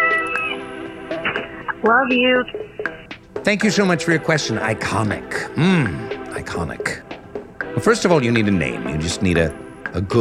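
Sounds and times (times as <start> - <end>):
cat meowing: 0.0 - 0.6
speech: 1.8 - 7.1, 7.8 - 10.1.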